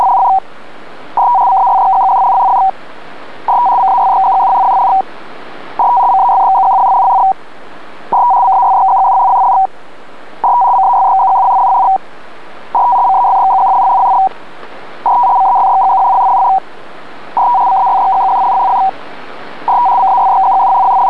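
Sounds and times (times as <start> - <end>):
pactor data signal: 0.0 - 0.4, 1.2 - 2.8, 3.5 - 5.1, 5.8 - 7.4, 8.1 - 9.7, 10.4 - 12.0, 12.8 - 14.3, 15.0 - 16.6, 17.4 - 19.0, 19.6 - 21.0.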